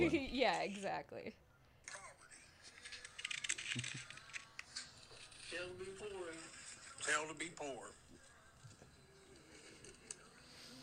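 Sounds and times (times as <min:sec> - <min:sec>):
speech: 0:00.0 - 0:01.4, 0:03.7 - 0:04.0, 0:05.5 - 0:08.0
seated man flipping through a wad of cash: 0:02.6 - 0:05.7.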